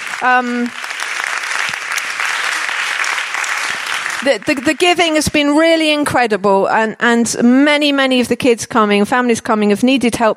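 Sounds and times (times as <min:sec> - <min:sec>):
audience applauding sponsors at a community event: 0:00.0 - 0:05.5
speech: 0:00.2 - 0:00.8, 0:04.2 - 0:10.3.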